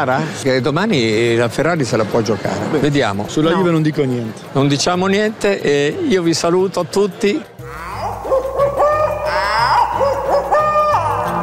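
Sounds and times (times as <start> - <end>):
speech: 0.0 - 7.9
owl hooting: 7.7 - 11.4.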